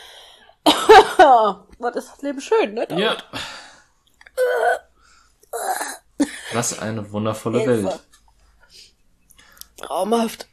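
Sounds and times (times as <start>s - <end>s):
speech: 1.0s - 3.4s, 6.6s - 8.1s, 9.9s - 10.5s
person with a persistent cough coughing: 5.6s - 6.8s.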